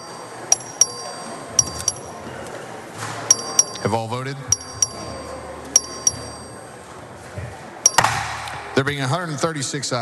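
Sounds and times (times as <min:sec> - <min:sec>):
small bright vote bell rung by a clerk in a legislative chamber: 0:00.0 - 0:02.2, 0:03.3 - 0:06.7, 0:07.8 - 0:08.1
low murmur of room noise in a large legislative hall: 0:00.0 - 0:10.0
speech: 0:03.8 - 0:04.6, 0:08.8 - 0:10.0.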